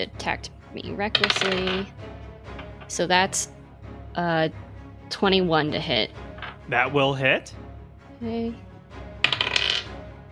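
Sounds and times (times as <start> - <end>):
speech: 0.0 - 2.0, 2.9 - 3.6, 4.2 - 7.6, 8.2 - 8.6
dice rolling on a table for a damage roll in a game: 1.1 - 1.9, 6.4 - 6.6, 9.2 - 9.9.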